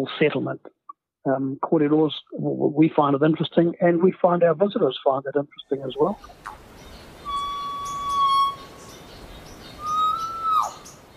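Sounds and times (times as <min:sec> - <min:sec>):
speech: 0:00.0 - 0:06.6
scattered high chirps and twitters from other birds in a forest: 0:05.6 - 0:11.1
two long clear whistled bird notes in a forest sanctuary: 0:06.2 - 0:11.1.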